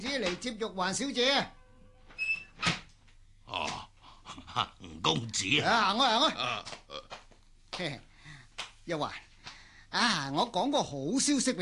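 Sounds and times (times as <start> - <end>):
speech: 0.1 - 1.6, 4.6 - 7.2, 7.8 - 8.1, 8.8 - 9.3, 9.9 - 11.5
door squeaking open: 1.4 - 2.9.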